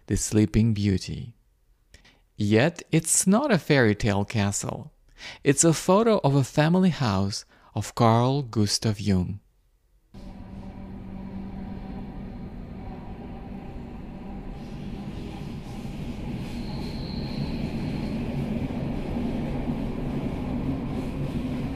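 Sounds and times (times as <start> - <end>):
speech: 0.1 - 1.4, 2.4 - 9.4
faint high whine: 10.2 - 21.7
train running on rails from Paris to Zurich: 10.2 - 21.7.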